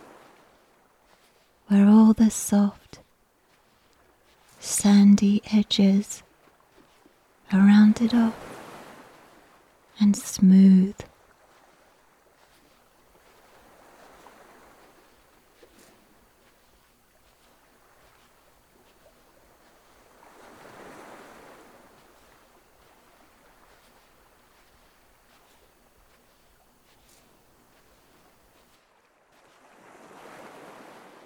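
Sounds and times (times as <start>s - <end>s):
gentle waves washing onto a shallow beach: 0.0s - 31.2s
speech: 1.7s - 2.8s, 4.8s - 6.2s, 7.5s - 8.4s, 10.0s - 11.1s.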